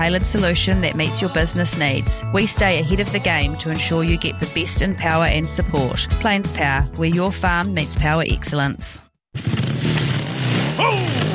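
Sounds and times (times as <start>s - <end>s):
speech: 0.0s - 9.5s
just-repaired motorcycle engine idling and revving: 9.4s - 11.3s.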